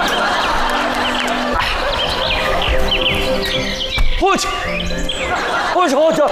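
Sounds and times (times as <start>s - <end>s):
laughter: 0.0s - 3.8s, 4.5s - 6.3s
small birds chirping: 1.0s - 6.1s.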